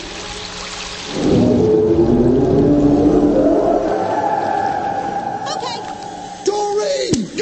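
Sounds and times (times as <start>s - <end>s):
deep drawn-out whale call: 1.1s - 7.0s
low rumbling background: 1.1s - 7.3s.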